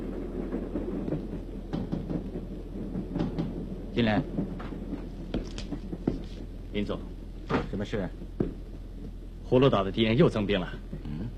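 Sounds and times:
military train speeding past at night: 0.0s - 11.3s
clattering knocks of a military train: 0.1s - 6.7s, 7.3s - 9.2s
speech: 4.0s - 4.5s, 6.8s - 8.2s, 9.5s - 10.8s.

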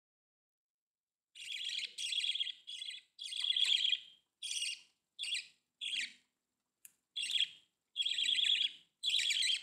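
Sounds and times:
budgerigar calling in harsh buzzy chirps: 1.4s - 6.2s, 7.2s - 9.6s.

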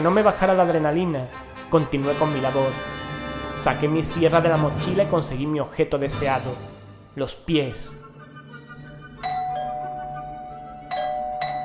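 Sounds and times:
speech: 0.0s - 2.9s, 3.6s - 8.0s
house doorbell chiming: 9.2s - 11.6s.

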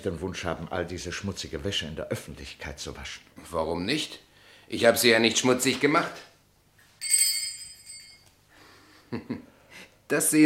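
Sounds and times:
speech: 0.0s - 6.3s, 9.1s - 9.5s, 10.1s - 10.4s
small handbell rung in a wealthy home to summon a servant: 7.0s - 8.3s.

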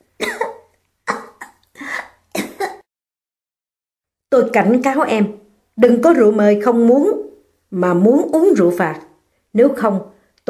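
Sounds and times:
woman coughing harshly: 0.2s - 2.9s
speech: 4.3s - 10.4s.

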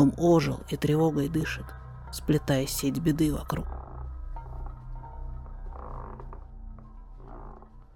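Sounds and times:
speech: 0.0s - 3.8s
creaking floorboards in an old house: 3.6s - 7.9s.

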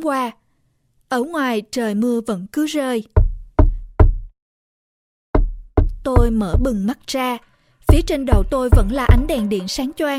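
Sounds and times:
speech: 0.0s - 0.4s, 1.1s - 3.2s, 6.0s - 10.1s
dull solid knocks with a low thud: 3.2s - 4.3s, 5.4s - 6.9s, 7.9s - 9.4s.

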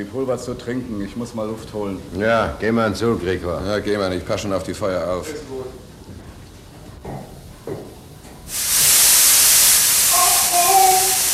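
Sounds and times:
speech: 0.0s - 5.8s
steam hissing from a burst steam pipe: 8.5s - 11.3s.

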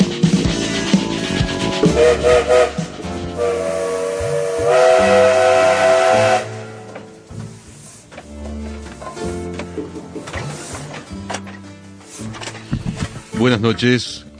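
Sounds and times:
steam train hissing steam as train departs: 0.0s - 8.1s
steam train whistle as train departs: 1.6s - 7.3s
speech: 2.0s - 2.8s, 13.4s - 14.3s.

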